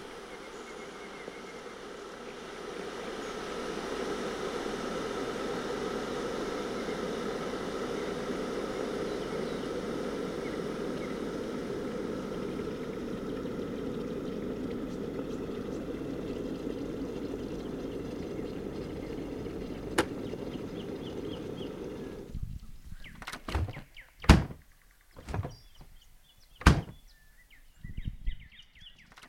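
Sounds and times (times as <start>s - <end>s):
faint birds chirping: 0.0s - 4.3s, 6.6s - 29.2s
electric kettle heating water for tea: 0.0s - 23.0s
refrigerator low hum: 0.0s - 27.1s
clunks and knocks as food is taken out: 23.2s - 24.6s, 25.2s - 25.9s, 26.6s - 27.0s
refrigerator door opening: 23.2s - 24.6s, 25.2s - 25.9s, 26.6s - 27.0s.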